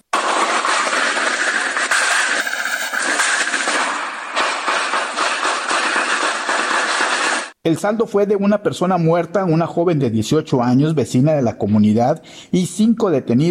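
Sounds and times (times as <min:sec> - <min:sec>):
rapid gunshots from an armed clash: 0:00.0 - 0:07.6
speech: 0:07.6 - 0:13.4.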